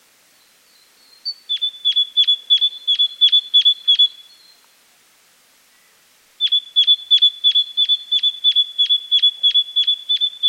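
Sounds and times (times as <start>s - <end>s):
great tit Parus major calling with sharp metallic pink notes: 1.1s - 4.4s, 6.4s - 10.4s.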